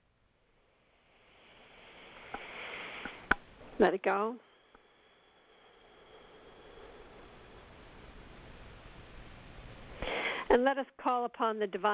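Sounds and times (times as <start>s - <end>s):
slow deep in-breath during a guided breathing exercise: 1.0s - 3.8s, 4.4s - 8.4s, 9.9s - 10.5s
speech: 3.8s - 4.5s, 10.6s - 11.9s.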